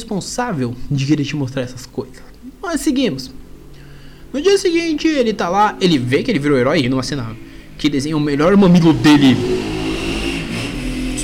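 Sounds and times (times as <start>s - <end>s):
speech: 0.0s - 3.4s, 4.3s - 9.6s
motorcycle engine passing outside: 4.4s - 11.2s.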